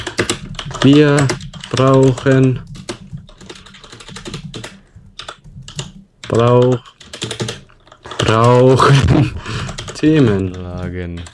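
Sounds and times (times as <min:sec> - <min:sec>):
typing on a computer keyboard while writing a tweet: 0:00.0 - 0:11.3
speech: 0:00.8 - 0:02.7, 0:06.3 - 0:07.4, 0:08.2 - 0:11.3.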